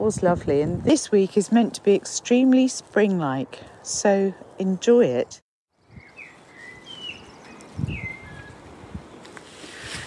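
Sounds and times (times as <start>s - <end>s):
low wind buffeting and rustling: 0.0s - 2.7s, 5.2s - 10.0s
speech: 0.0s - 5.4s
whistled bird notes: 5.8s - 8.6s
steady outdoor hiss: 9.2s - 10.0s.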